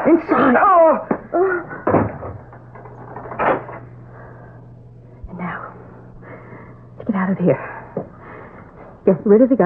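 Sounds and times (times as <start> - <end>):
steady low hum: 0.0 - 9.6
wooden closet door opening and banging shut: 1.8 - 3.8
speech: 7.4 - 7.7, 9.3 - 9.6.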